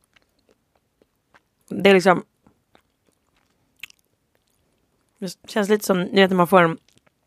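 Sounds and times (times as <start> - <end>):
chewing cheese with rosemary bits: 0.0 - 1.7, 2.4 - 5.2, 6.8 - 7.2
speech: 1.7 - 2.3, 5.2 - 6.9.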